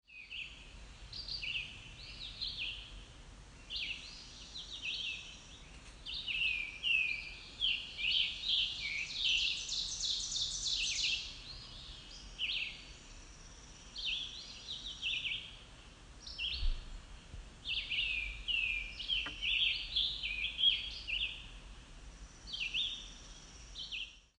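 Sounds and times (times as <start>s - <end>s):
ovenbird singing in the woods along a road in spring: 3.6s - 15.6s, 16.2s - 16.9s, 17.6s - 21.6s, 22.2s - 24.3s.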